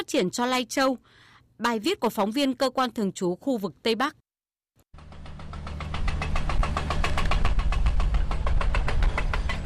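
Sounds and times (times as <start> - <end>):
speech: 0.0 - 4.2
deep engine rumble of tunnel drilling machinery: 4.9 - 9.6
heavy drilling machinery drilling into the rock face at a tunnel construction site inside Hoàng Liên mountain: 4.9 - 9.6.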